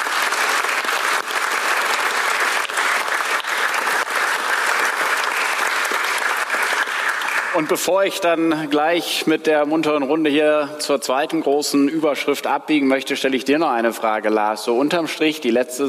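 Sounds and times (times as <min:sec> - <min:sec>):
audience clapping: 0:00.0 - 0:08.6
speech: 0:07.6 - 0:15.8.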